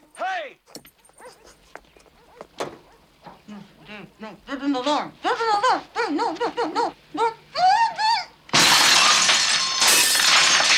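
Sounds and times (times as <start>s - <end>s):
speech: 4.2s - 7.2s
window glass smashing: 8.5s - 10.7s
breaking glass shards crackling and tinkling: 8.6s - 10.7s.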